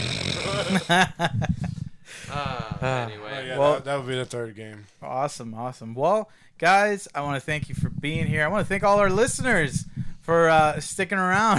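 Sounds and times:
person mimicking snoring with their voice: 0.0 - 1.0
speech: 0.7 - 1.6, 2.2 - 11.5.

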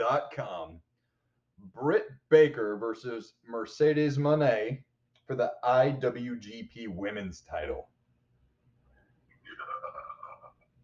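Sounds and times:
speech: 0.1 - 0.8, 1.6 - 7.9
long growling burp: 9.5 - 10.6.

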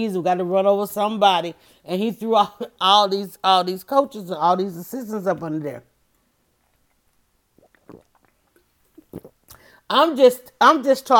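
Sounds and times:
speech: 0.0 - 5.9, 9.9 - 11.1
person sipping a drink: 6.6 - 9.8
small mouth sounds: 6.6 - 9.8
soft wet gulps: 6.8 - 9.8.

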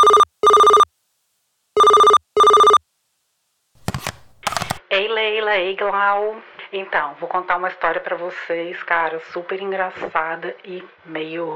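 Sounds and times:
telephone ringing for an incoming call: 0.0 - 0.9, 1.8 - 2.8, 3.8 - 4.8
speech: 5.0 - 11.5.

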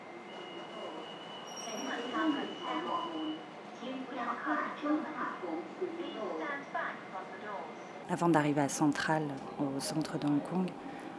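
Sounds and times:
metro train running along rails with rumble and high whine: 0.0 - 7.8
speech: 2.0 - 10.9.

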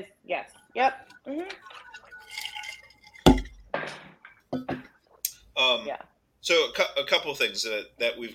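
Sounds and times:
speech: 0.0 - 1.6, 5.9 - 8.3
glass bottle clink in a toast celebrating a 40th birthday: 1.0 - 4.9.

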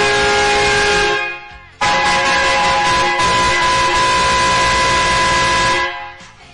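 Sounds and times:
truck horn honking: 0.0 - 6.3.

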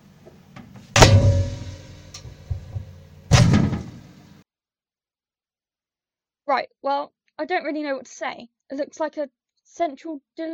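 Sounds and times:
heavy resonant bangs: 0.9 - 4.3
rattle: 1.0 - 4.1
speech: 6.5 - 10.5.

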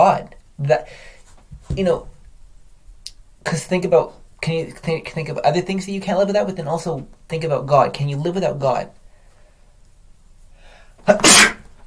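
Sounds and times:
speech: 0.0 - 1.1, 1.7 - 2.1, 3.4 - 9.0, 11.0 - 11.5
person sneezing: 11.0 - 11.7.

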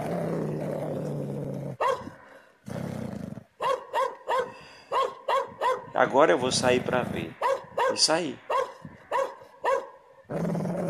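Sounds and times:
dog low growling rumble: 0.0 - 3.6, 6.5 - 7.4, 10.3 - 10.8
dog barking fiercely straining on chain: 1.8 - 2.2, 3.6 - 6.0, 7.3 - 10.0
speech: 6.0 - 8.5.

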